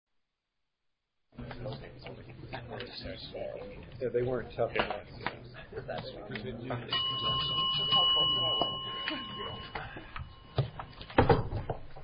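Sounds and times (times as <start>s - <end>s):
speech: 1.6s - 10.0s
bell ringing to signal a broadcast on air: 6.9s - 11.2s.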